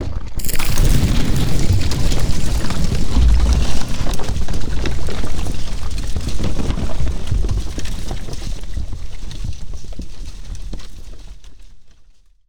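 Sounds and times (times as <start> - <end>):
bomb blast explosion: 0.4 - 7.7
falling stone debris: 0.4 - 11.3.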